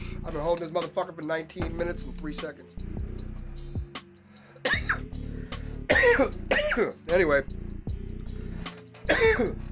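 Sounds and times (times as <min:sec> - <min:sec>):
speech: 0:00.4 - 0:03.0, 0:06.0 - 0:07.6, 0:09.1 - 0:09.7
person clearing throat: 0:04.6 - 0:05.1, 0:05.9 - 0:07.0, 0:09.1 - 0:09.6
person coughing after smoking: 0:04.6 - 0:05.1, 0:05.9 - 0:07.0, 0:09.1 - 0:09.6.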